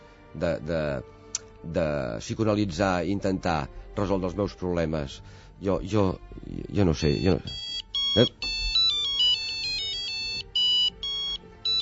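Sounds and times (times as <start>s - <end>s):
speech: 0.4s - 7.6s, 8.2s - 8.4s
mobile phone ringtone: 7.0s - 11.8s.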